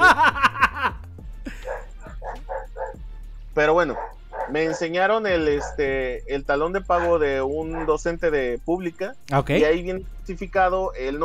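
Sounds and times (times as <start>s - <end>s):
laughter: 0.0s - 2.9s
dog barking sharply: 1.5s - 3.1s, 3.8s - 6.0s, 7.0s - 8.0s
speech: 3.6s - 11.2s.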